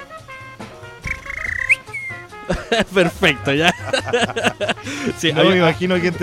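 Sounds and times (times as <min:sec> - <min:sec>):
person whistling: 0:01.1 - 0:02.3
laughter: 0:02.5 - 0:05.5
speech: 0:02.5 - 0:06.2.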